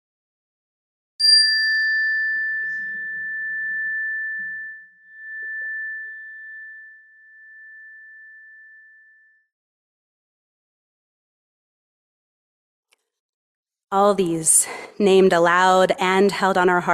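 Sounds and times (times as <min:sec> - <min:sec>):
single chime ringing with a bright clear tone: 0:01.2 - 0:09.4
speech: 0:13.9 - 0:16.9.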